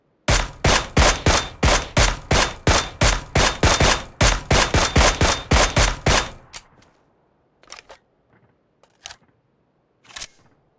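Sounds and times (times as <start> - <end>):
suppressed Mini 14 rifle single shot: 0.3 - 6.6.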